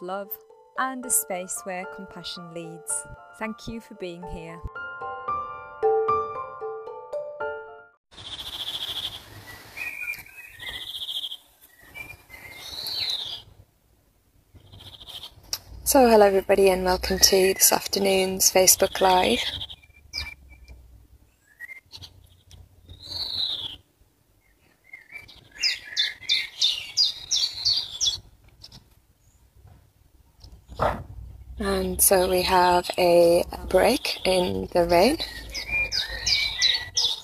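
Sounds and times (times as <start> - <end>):
speech: 0.0 - 4.8, 15.9 - 19.7, 32.0 - 35.4
birds chirping and tweeting outdoors: 8.2 - 13.5, 14.5 - 37.2.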